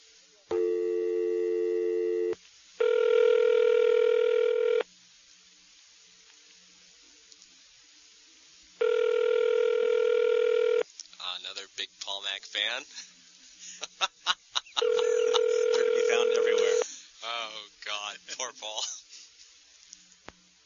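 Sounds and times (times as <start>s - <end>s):
electronic telephone ring tone heard down the line: 0.5s - 4.8s, 8.8s - 10.8s, 14.8s - 16.8s
laughter: 12.8s - 17.2s, 18.1s - 19.5s.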